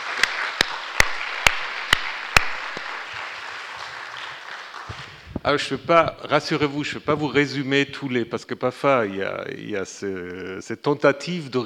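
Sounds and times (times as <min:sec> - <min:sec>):
audience applause at the close of a conference: 0:00.0 - 0:06.0
sharp louder claps at a regular rhythm: 0:00.0 - 0:06.2
speech: 0:05.4 - 0:11.6.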